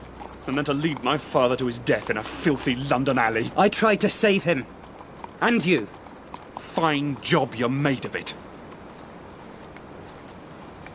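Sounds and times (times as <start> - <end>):
constant broad noise: 0.0 - 10.9
horses' hooves clip-clopping while riding: 0.0 - 10.9
speech: 0.4 - 4.8, 5.4 - 6.0, 6.8 - 8.4.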